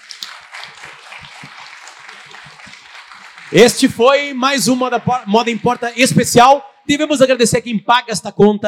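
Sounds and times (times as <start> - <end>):
crowd applauding: 0.0 - 6.6
speech: 3.5 - 8.6.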